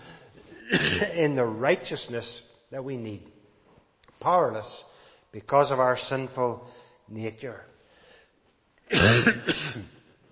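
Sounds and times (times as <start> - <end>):
person coughing: 0.6 - 1.2, 8.9 - 10.1
speech: 0.7 - 3.4, 4.2 - 7.7, 8.9 - 10.0.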